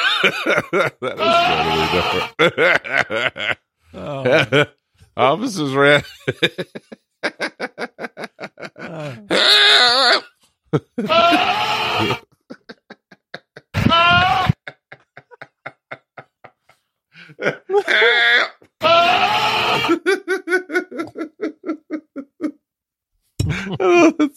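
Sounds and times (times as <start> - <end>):
laughter: 0.0 - 4.8, 5.8 - 9.3, 10.7 - 18.0, 19.8 - 22.6, 23.4 - 24.3
speech: 0.2 - 8.3, 8.9 - 12.2, 17.4 - 20.2, 23.5 - 24.3
goat screaming: 1.2 - 2.4, 9.3 - 10.3, 11.0 - 12.2, 13.7 - 14.6, 17.8 - 20.1.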